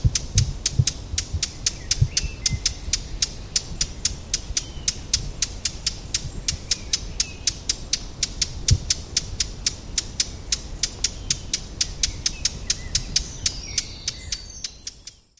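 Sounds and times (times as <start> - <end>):
low rumbling background: 0.0 - 14.8
Eurasian blackcap Sylvia atricapilla hard dry tacking clicks: 0.1 - 15.2.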